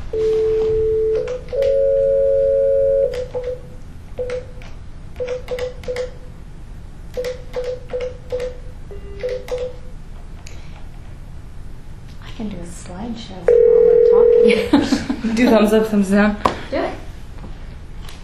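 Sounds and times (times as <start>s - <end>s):
cell phone dial tone on speakerphone: 0.1s - 3.6s, 13.5s - 14.5s
cell phone keypad beeping tones on speakerphone: 0.1s - 4.6s, 5.2s - 6.2s, 7.2s - 9.8s
speech: 15.6s - 16.5s.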